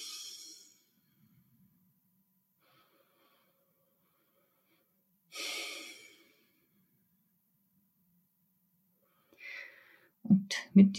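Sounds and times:
slow deep breathing of a person sitting upright: 0.0 - 1.6, 2.5 - 7.0, 9.0 - 10.2
speech: 10.8 - 10.9.

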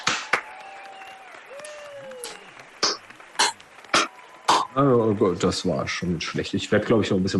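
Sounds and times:
scattered hand claps from a small group of hosts: 0.0 - 5.3
speech: 4.8 - 7.3.

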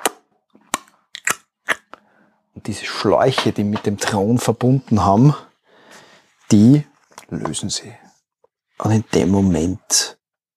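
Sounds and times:
voice imitating a wet squelching smack with mouth pops and clicks: 0.0 - 2.1
speech: 2.6 - 5.5, 6.5 - 8.1, 8.8 - 10.2.

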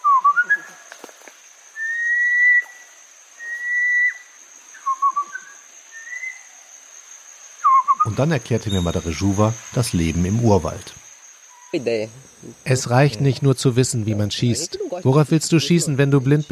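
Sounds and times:
man in the jungle whistling calls to a monkey: 0.0 - 0.8, 1.8 - 6.5, 7.6 - 9.6
constant high-pitched drone: 7.9 - 16.4
speech: 8.1 - 11.0, 11.7 - 16.4.

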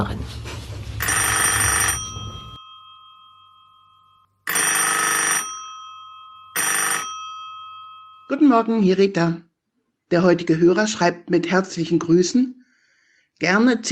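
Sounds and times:
speech: 0.0 - 0.5, 8.3 - 9.5, 10.1 - 12.6, 13.4 - 13.8
telephone ringing for an incoming call: 1.0 - 9.0.

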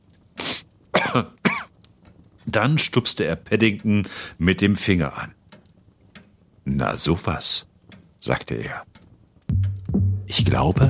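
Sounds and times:
man coughing to get attention: 1.0 - 1.7
speech: 1.2 - 1.4, 2.5 - 5.4, 6.6 - 8.9, 10.3 - 10.8.

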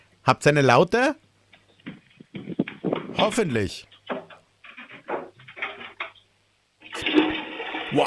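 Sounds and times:
speech: 0.3 - 1.2, 3.2 - 3.9
loud toilet flush: 6.8 - 8.0.

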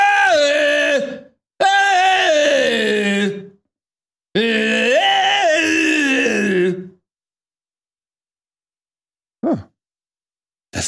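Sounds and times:
voice imitating screaming in sleep: 0.0 - 3.4, 4.4 - 6.9.

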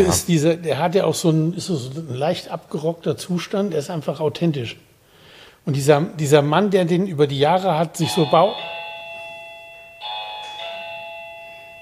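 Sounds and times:
speech: 0.0 - 4.9, 5.6 - 8.8
faint hum: 0.0 - 11.8
doorbell with two clear electronic chimes: 8.0 - 11.8.

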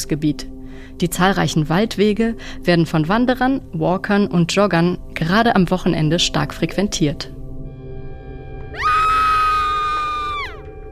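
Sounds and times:
speech: 0.0 - 7.4
loud high-pitched scream: 8.6 - 10.9.

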